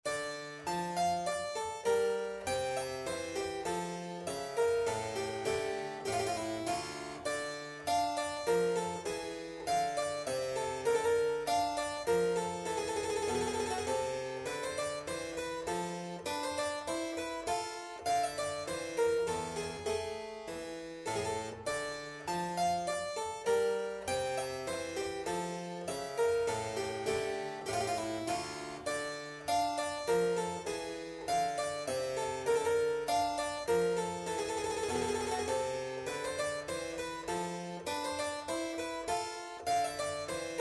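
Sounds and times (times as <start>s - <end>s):
keyboard sonata on piano: 0.0s - 40.5s.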